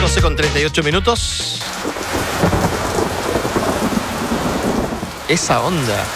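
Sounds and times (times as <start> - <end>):
speech: 0.2 - 2.5, 5.3 - 6.1
steady heavy rain pouring: 1.2 - 6.1
low rumble of thunder: 2.1 - 5.2.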